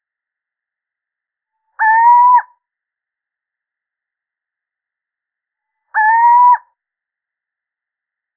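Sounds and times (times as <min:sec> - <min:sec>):
male Little owl giving mellow hoots: 0:01.8 - 0:02.5, 0:06.0 - 0:06.7.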